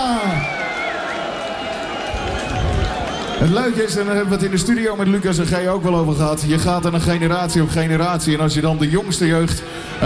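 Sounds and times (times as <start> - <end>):
crowd cheering and applauding: 0.0 - 5.0
speech: 3.4 - 10.0.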